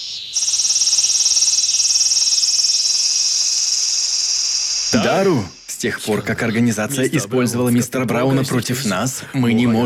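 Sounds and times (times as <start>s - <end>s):
loud cicadas droning: 0.0s - 6.0s
speech: 4.9s - 9.8s.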